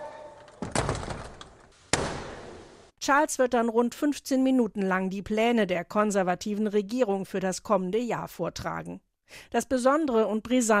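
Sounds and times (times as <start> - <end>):
heavy door slamming in a large room: 0.2 - 2.7
speech: 3.1 - 10.7.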